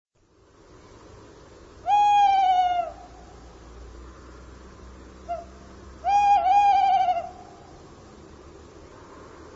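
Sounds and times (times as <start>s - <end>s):
bird calling: 1.8s - 3.4s, 5.2s - 7.8s.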